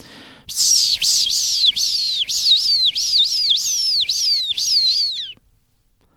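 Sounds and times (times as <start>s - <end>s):
person imitating shrill calls of a common swift: 0.6s - 5.4s.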